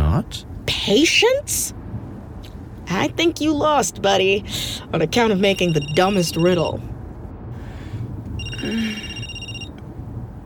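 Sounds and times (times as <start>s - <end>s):
steady low rumble: 0.0s - 10.4s
speech: 0.2s - 1.8s, 2.9s - 6.9s, 8.6s - 9.1s
telephone ringing: 5.5s - 6.8s, 8.4s - 9.8s.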